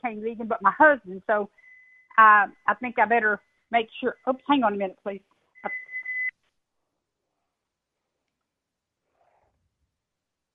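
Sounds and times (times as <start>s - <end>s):
speech: 0.0s - 5.8s
kitchen timer giving a high-pitched electronic beep: 5.7s - 6.3s.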